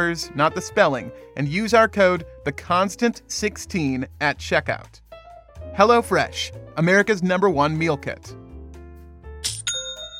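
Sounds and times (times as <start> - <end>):
speech: 0.0 - 5.0, 5.8 - 8.4
online store sale notification chime: 9.6 - 10.1.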